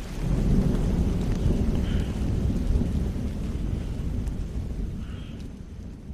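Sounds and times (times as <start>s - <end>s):
deep rolling thunder: 0.0s - 6.1s
heavy rain pouring in a thunderstorm: 0.0s - 6.1s
faint higher calls of jungle wildlife: 5.0s - 5.5s.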